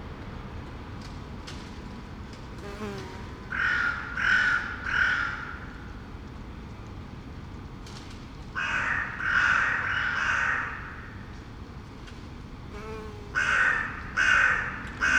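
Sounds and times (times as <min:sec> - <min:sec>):
crow giving harsh caws in Saint-Gilles Belgium: 0:03.5 - 0:05.6, 0:08.6 - 0:11.0, 0:13.3 - 0:15.1.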